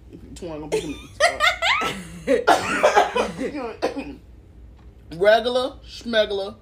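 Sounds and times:
speech: 0:00.1 - 0:04.3, 0:05.1 - 0:06.6
voiced laugh-like vocal sounds: 0:00.8 - 0:03.8
harsh coughs: 0:01.9 - 0:04.2.

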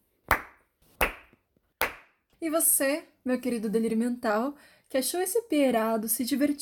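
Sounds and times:
slow deliberate hand claps: 0:00.3 - 0:02.2
speech: 0:02.4 - 0:06.6.

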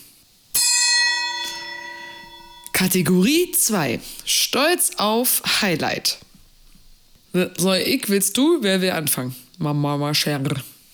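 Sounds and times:
gong struck: 0:00.5 - 0:03.6
speech: 0:02.8 - 0:06.3, 0:07.3 - 0:10.7.

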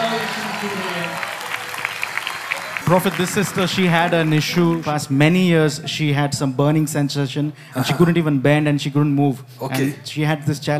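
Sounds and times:
audience clapping after a healing testimony: 0:00.0 - 0:05.4
speech: 0:02.9 - 0:10.7.

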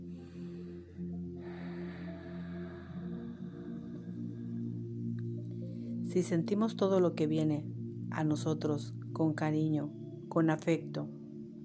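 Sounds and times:
slow deep breath drawn in and let out: 0:00.0 - 0:06.1
steady low humming drone: 0:00.0 - 0:10.3
speech: 0:06.1 - 0:11.2.

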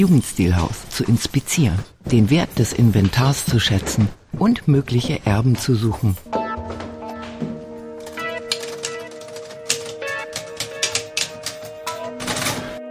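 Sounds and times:
speech: 0:00.0 - 0:06.8
old slightly sticking typewriter keys clacking in an Art Nouveau house: 0:08.0 - 0:12.8.

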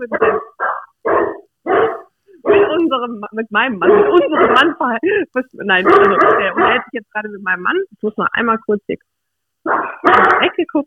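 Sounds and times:
speech: 0:00.0 - 0:00.5, 0:03.0 - 0:10.8
house dogs barking on guard: 0:00.0 - 0:02.9, 0:03.8 - 0:04.8, 0:05.8 - 0:06.9, 0:09.7 - 0:10.6.

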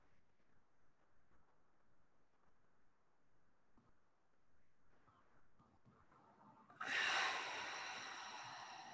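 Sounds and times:
deep breathing during a guided breathing exercise: 0:06.8 - 0:08.9.

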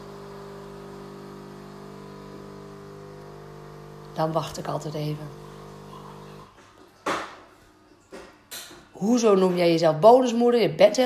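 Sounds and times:
coffee machine humming: 0:00.0 - 0:06.7
speech: 0:04.2 - 0:05.4, 0:09.0 - 0:11.0.

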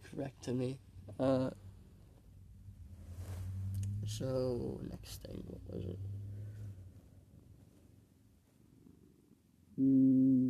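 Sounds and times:
speech: 0:00.2 - 0:01.6, 0:04.1 - 0:06.2, 0:09.8 - 0:10.3
cat purring while being petted: 0:02.9 - 0:10.4.

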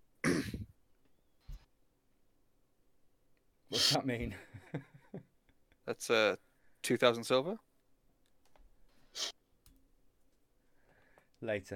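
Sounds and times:
person coughing: 0:00.2 - 0:00.7
speech: 0:03.7 - 0:05.2, 0:05.9 - 0:07.6, 0:09.2 - 0:09.4, 0:11.4 - 0:11.7.

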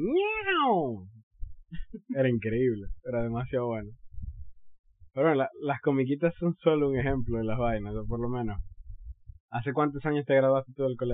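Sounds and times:
person imitating a cat meow: 0:00.0 - 0:01.0
speech: 0:02.2 - 0:04.0, 0:05.2 - 0:08.7, 0:09.5 - 0:11.1.

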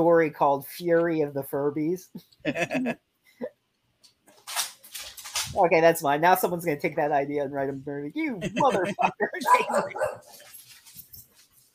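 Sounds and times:
speech: 0:00.0 - 0:03.1, 0:05.5 - 0:10.5
laughter: 0:02.5 - 0:03.0, 0:08.4 - 0:10.0
pet dog barking loudly indoors at a dog outside: 0:09.5 - 0:10.3
pet dog yipping quietly indoors: 0:09.5 - 0:10.4.

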